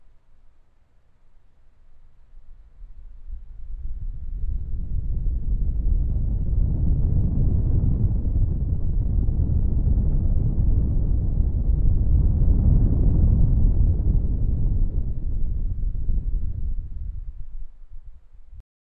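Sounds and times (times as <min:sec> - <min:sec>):
strong wind: 0:02.7 - 0:18.6.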